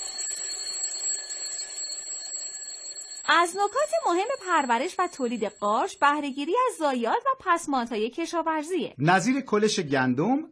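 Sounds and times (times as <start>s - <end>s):
alarm clock ringing: 0.0s - 7.0s
speech: 3.3s - 10.5s.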